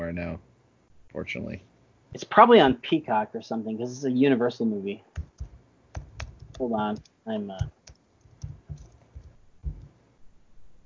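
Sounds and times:
speech: 0:00.1 - 0:00.5, 0:01.1 - 0:05.3, 0:06.6 - 0:07.8
typing on computer keyboards by two people: 0:05.2 - 0:09.9.

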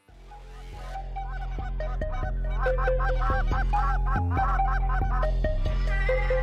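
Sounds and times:
loud steady intro music with a driving beat: 0:00.8 - 0:06.4
nasal goose honks: 0:02.5 - 0:05.3.

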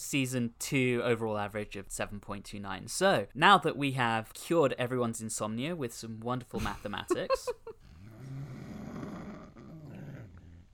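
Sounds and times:
speech: 0:00.0 - 0:07.6
dog growling low and rumbling: 0:07.8 - 0:10.7.

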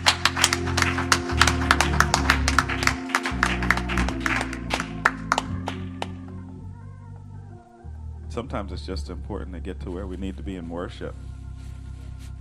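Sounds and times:
audience clapping hands in praise during worship: 0:00.0 - 0:06.5
organ and bass music: 0:00.0 - 0:12.4
speech: 0:08.4 - 0:11.3.

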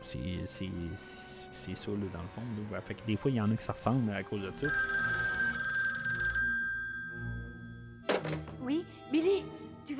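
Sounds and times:
speech: 0:00.0 - 0:05.0
telephone bell ringing: 0:04.6 - 0:08.1.

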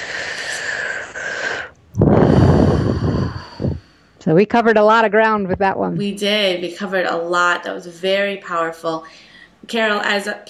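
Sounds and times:
person breathing deeply: 0:00.0 - 0:04.2
speech: 0:04.2 - 0:10.4.

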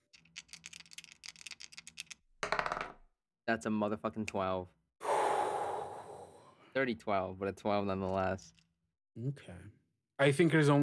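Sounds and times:
dice clattering: 0:00.1 - 0:03.0
speech: 0:03.5 - 0:04.8, 0:06.8 - 0:08.6, 0:09.2 - 0:10.8.

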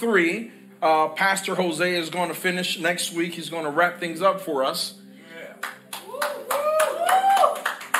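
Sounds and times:
speech: 0:00.0 - 0:05.0
crowd clapping together in a steady rhythm: 0:05.6 - 0:07.9
faint vocal whoop or cheer: 0:06.0 - 0:07.7.

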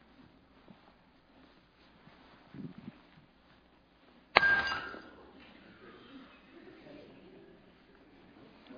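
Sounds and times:
faint low murmur: 0:00.0 - 0:08.7
old drinking glass shattering: 0:04.4 - 0:05.2
scattered glass tinkling: 0:04.4 - 0:05.2.

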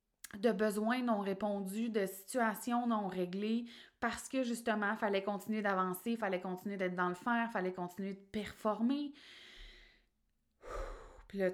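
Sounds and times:
speech: 0:00.4 - 0:09.5, 0:11.3 - 0:11.5
woman breathing heavily, out of breath after talking at length: 0:09.2 - 0:11.3.

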